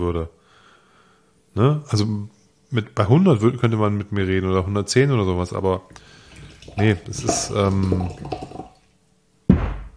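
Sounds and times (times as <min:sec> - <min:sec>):
speech: 0:00.0 - 0:00.4, 0:01.6 - 0:06.2, 0:06.8 - 0:08.7
water poured aggressively from a water bottle into a glass: 0:06.2 - 0:08.8.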